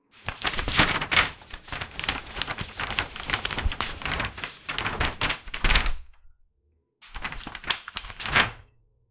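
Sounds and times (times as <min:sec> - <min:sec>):
paper rustling under door: 0:00.0 - 0:06.3, 0:07.1 - 0:08.7.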